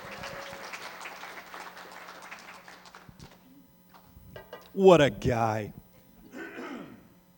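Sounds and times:
audience applauding a pastor: 0:00.0 - 0:03.4
speech: 0:04.8 - 0:05.8.

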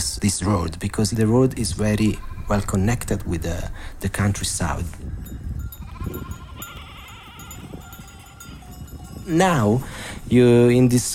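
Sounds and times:
speech: 0:00.2 - 0:05.4, 0:09.3 - 0:11.1
flock of sheep bleating: 0:02.1 - 0:02.8, 0:05.7 - 0:09.4
dense low rumble of sheep hooves and movement: 0:04.6 - 0:09.9.

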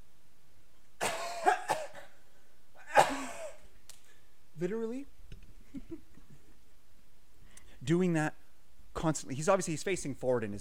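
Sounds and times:
person imitating harsh coughing of a classmate with a cold: 0:01.0 - 0:02.2, 0:02.8 - 0:03.7
speech: 0:04.6 - 0:06.1, 0:07.8 - 0:08.4, 0:09.0 - 0:10.5.

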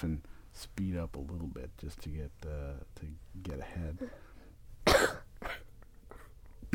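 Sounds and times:
speech: 0:00.0 - 0:04.3
person coughing: 0:04.9 - 0:06.2.

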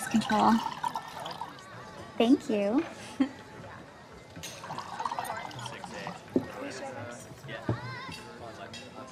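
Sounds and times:
glasses clinking: 0:00.0 - 0:01.6, 0:04.4 - 0:06.6
wine pouring into glasses: 0:00.0 - 0:01.9, 0:04.3 - 0:06.7
murmur of voices in a restaurant: 0:00.0 - 0:09.0
restaurant bustle: 0:00.0 - 0:09.0
speech: 0:00.1 - 0:00.8, 0:02.2 - 0:03.4.

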